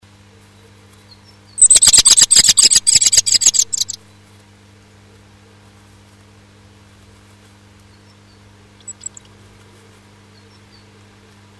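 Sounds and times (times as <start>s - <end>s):
rapid shrill high-pitched bird chirps at a nest box: 1.6s - 4.0s, 8.8s - 9.3s
low hum: 1.6s - 4.1s.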